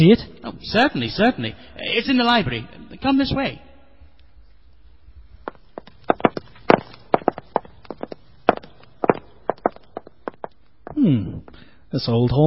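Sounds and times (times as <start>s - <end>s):
speech: 0.0s - 3.7s, 11.9s - 12.4s
someone tiptoeing up stairs in an old hall: 5.5s - 11.6s.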